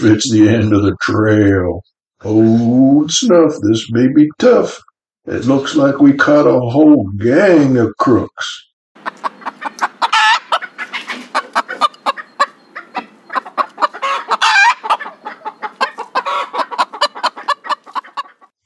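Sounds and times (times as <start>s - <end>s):
speech: 0.0s - 9.3s
hen clucking: 9.0s - 18.6s.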